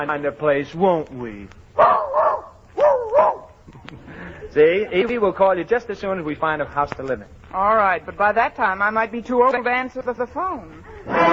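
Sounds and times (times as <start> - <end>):
speech: 0.0 - 1.9, 4.5 - 11.3
small dog yapping: 1.8 - 3.6.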